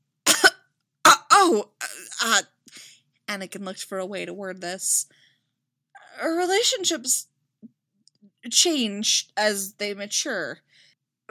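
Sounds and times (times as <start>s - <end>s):
person coughing: 0.3s - 2.4s
speech: 1.5s - 5.2s, 6.1s - 7.3s, 8.4s - 11.3s.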